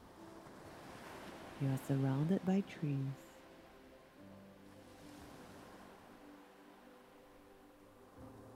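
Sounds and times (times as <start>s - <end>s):
ocean waves breaking on a beach: 0.0s - 8.5s
speech: 1.6s - 3.2s.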